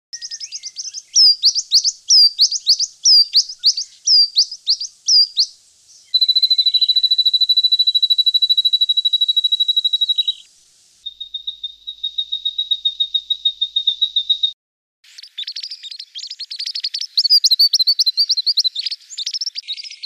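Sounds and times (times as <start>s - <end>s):
eastern spinebill honeyeater calling in a Canberra garden: 0.2s - 19.9s.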